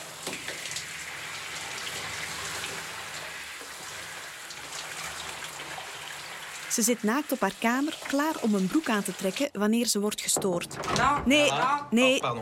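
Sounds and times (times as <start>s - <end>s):
home shower water spattering on a hard surface: 0.0s - 9.6s
speech: 6.8s - 12.4s.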